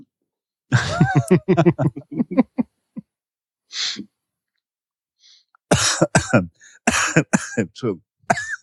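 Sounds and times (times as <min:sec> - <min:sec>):
speech: 0:00.7 - 0:02.4, 0:05.8 - 0:08.6
laughter: 0:00.7 - 0:02.6
man clearing throat and hacking coughs into the mic: 0:05.7 - 0:08.6.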